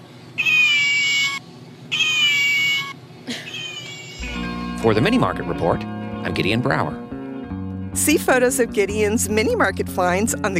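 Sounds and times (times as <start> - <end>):
low hum: 0.0 - 10.5
toy cat meowing electronically: 0.4 - 4.4
speech: 4.8 - 7.0, 8.0 - 10.5.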